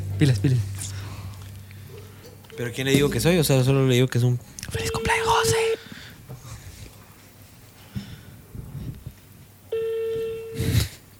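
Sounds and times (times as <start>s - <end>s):
speech: 0.2s - 1.0s, 2.6s - 5.6s
breathing: 0.8s - 2.4s, 5.8s - 7.2s, 7.8s - 8.9s
ringback tone of a telephone call ringing out: 4.8s - 5.8s, 9.7s - 10.7s.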